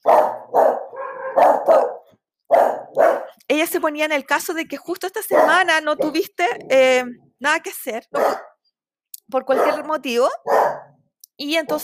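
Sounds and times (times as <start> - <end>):
dog barking: 0.0 - 3.4, 5.2 - 6.2, 8.1 - 8.6, 9.5 - 11.0
speech: 3.5 - 8.5, 9.3 - 10.8, 11.4 - 11.8.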